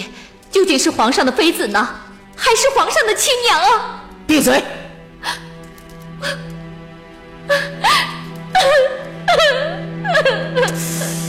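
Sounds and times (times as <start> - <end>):
speech: 0.6 - 5.4, 6.2 - 6.5, 7.5 - 7.7
woman sobbing: 7.4 - 10.8.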